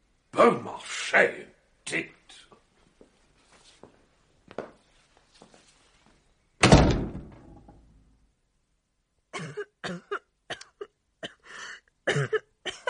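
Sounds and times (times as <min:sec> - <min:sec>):
speech: 0:00.4 - 0:02.1
heavy door-like thud: 0:06.6 - 0:07.8
person coughing harshly: 0:09.4 - 0:11.4, 0:12.1 - 0:12.8.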